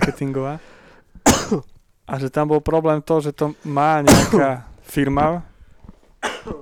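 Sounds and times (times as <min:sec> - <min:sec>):
harsh raspy coughs in a coughing fit: 0:00.0 - 0:00.3, 0:01.2 - 0:01.8, 0:04.0 - 0:04.6, 0:06.2 - 0:06.6
speech: 0:00.1 - 0:05.5.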